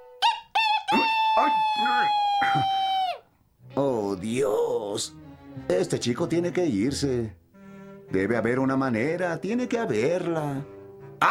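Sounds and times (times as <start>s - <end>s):
voice actor imitating a cartoon rooster attempting to crow: 0.2s - 3.3s
speech: 1.4s - 2.9s, 4.2s - 7.4s, 8.1s - 11.2s.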